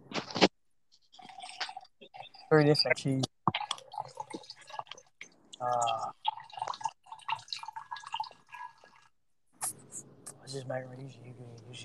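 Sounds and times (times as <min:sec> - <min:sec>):
vodka being poured out: 0:01.1 - 0:09.2
people chatting: 0:02.5 - 0:03.3, 0:05.6 - 0:06.1, 0:09.6 - 0:11.8
speech: 0:02.5 - 0:03.3, 0:05.6 - 0:06.2, 0:10.6 - 0:11.8.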